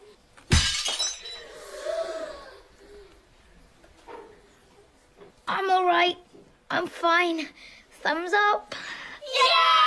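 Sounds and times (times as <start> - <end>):
plate being smashed and shattering: 0.5 - 1.4
speech: 6.0 - 9.7.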